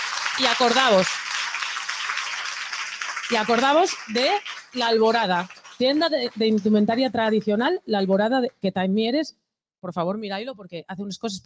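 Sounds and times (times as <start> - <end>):
audience applauding for a performer: 0.0 - 7.4
speech: 0.4 - 1.3, 3.3 - 11.4.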